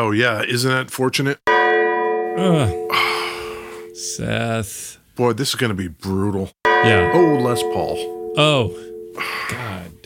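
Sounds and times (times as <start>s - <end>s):
speech: 0.0s - 1.6s, 2.4s - 3.1s, 4.0s - 10.0s
gong ringing: 1.5s - 4.1s, 6.7s - 9.5s.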